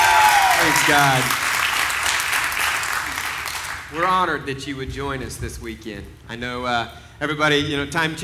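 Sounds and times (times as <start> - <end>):
large church audience applause: 0.0 - 4.9
speech: 0.8 - 1.4, 3.9 - 8.2.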